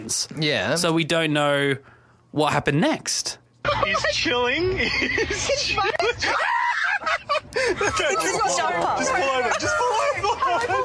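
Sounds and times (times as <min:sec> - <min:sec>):
speech: 0:00.1 - 0:10.8
laughter: 0:03.7 - 0:10.8
people screaming and yelling in a car: 0:06.1 - 0:10.8.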